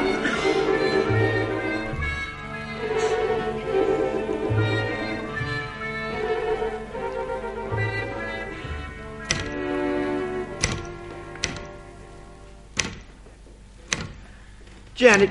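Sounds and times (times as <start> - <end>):
soft steady tonal background: 0.0 - 15.3
typewriter keys clacking: 10.6 - 11.7
speech: 15.0 - 15.3.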